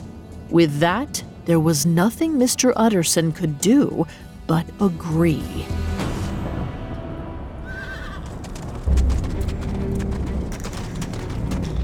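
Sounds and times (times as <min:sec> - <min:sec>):
speech: 0:00.5 - 0:05.8
horse of a horse-drawn coach whinnying on a London street: 0:07.6 - 0:08.6
horse hooves clip-clopping on a London street: 0:07.7 - 0:11.8.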